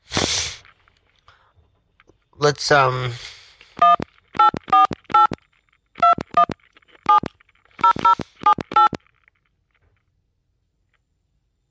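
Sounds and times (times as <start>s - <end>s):
speech: 2.4s - 3.3s
telephone keypad dialing tones: 3.8s - 5.4s, 6.0s - 9.0s.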